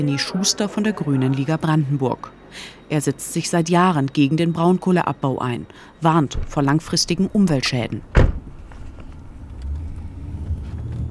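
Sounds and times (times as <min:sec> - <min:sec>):
speech: 0:00.0 - 0:08.2
car engine and road rumble driving through small villages in Lusatia: 0:07.3 - 0:11.0.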